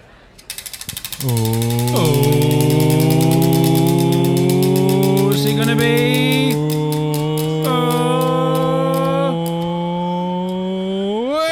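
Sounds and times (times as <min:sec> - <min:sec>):
spinning prize wheel ratcheting clicks: 0:00.4 - 0:10.6
loud steady buzzing tone: 0:00.6 - 0:11.0
speech: 0:01.2 - 0:02.6.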